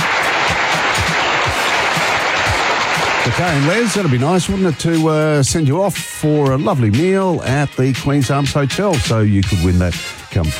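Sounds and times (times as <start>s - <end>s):
studio audience applause: 0.0s - 5.4s
speech: 3.4s - 10.5s.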